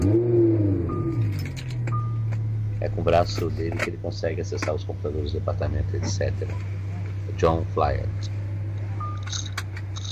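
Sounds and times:
car engine starting and idling: 0.0 - 10.0
short electronic beeps: 0.8 - 1.3, 1.9 - 2.3, 9.0 - 10.0
speech: 2.8 - 6.8, 7.4 - 8.4.

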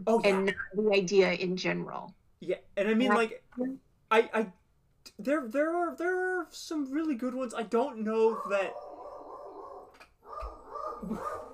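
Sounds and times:
speech: 0.0 - 8.9, 11.0 - 11.4
female dog barking and whining: 8.2 - 11.5.

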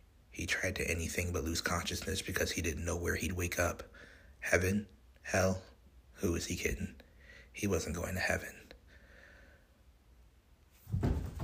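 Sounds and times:
speech: 0.4 - 7.0, 7.6 - 8.6
bathroom door opening: 10.9 - 11.4.

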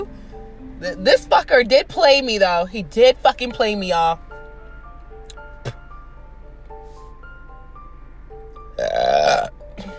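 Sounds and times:
gentle tonal music: 0.0 - 9.9
speech: 0.8 - 4.3
person burping: 8.8 - 9.9.

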